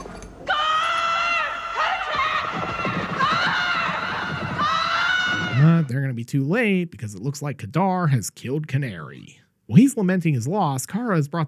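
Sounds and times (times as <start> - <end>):
woman's piercing magic scream in film clip: 0.5 - 5.7
speech: 5.6 - 11.4.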